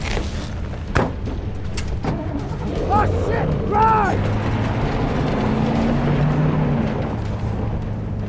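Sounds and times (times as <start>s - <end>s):
truck engine rumbling while driving off: 0.2s - 8.2s.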